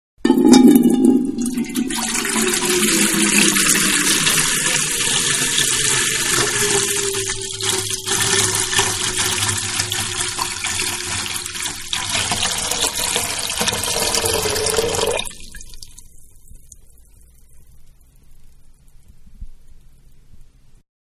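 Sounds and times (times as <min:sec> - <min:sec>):
water pouring into a metal pail: 0:00.2 - 0:16.4.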